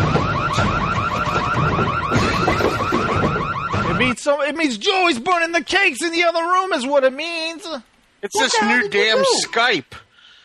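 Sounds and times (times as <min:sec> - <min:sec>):
continuous electronic alarm with warbling tones: 0:00.0 - 0:04.2
speech: 0:04.2 - 0:10.0.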